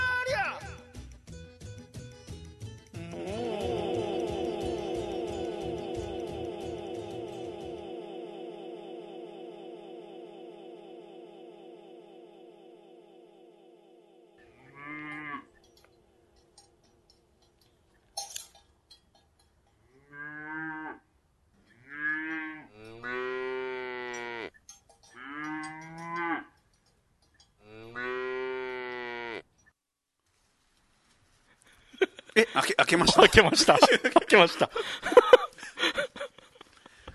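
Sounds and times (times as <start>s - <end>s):
laughter: 3.0s - 14.1s, 31.9s - 37.1s
cow mooing: 14.4s - 15.6s, 20.0s - 21.0s, 21.8s - 26.5s, 27.6s - 29.5s
faint bell-like clank: 15.6s - 19.8s
speech: 32.4s - 35.1s.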